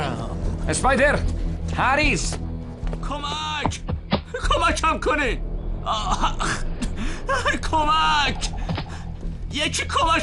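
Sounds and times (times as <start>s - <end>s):
speech: 0.7s - 2.4s, 3.0s - 3.8s, 4.5s - 6.7s, 7.3s - 8.6s, 9.5s - 10.2s
person crying and whimpering: 5.9s - 7.6s.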